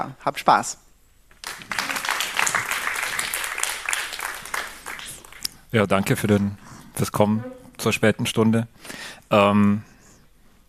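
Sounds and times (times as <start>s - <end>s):
speech: 0.0s - 0.8s, 5.7s - 9.9s
audience applause: 1.4s - 5.5s.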